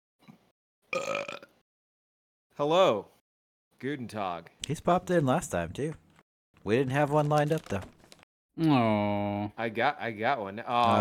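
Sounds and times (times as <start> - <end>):
speech: 0.9 - 1.5, 2.6 - 3.2, 3.8 - 6.0, 6.6 - 8.0, 8.6 - 10.9
person burping with a raspy throaty belch: 0.9 - 1.6.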